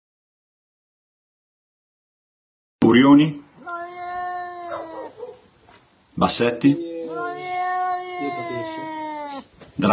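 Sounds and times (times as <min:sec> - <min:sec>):
speech: 0:02.8 - 0:03.4, 0:06.2 - 0:06.9, 0:09.8 - 0:09.9
angry domestic cat giving a drawn-out meow: 0:03.6 - 0:05.4, 0:06.5 - 0:09.6.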